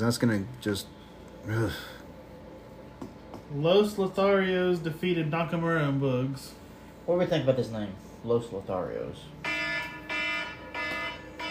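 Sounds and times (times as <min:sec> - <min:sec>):
speech: 0:00.0 - 0:02.0, 0:03.5 - 0:09.4
electronic alarm beeping: 0:09.4 - 0:11.4.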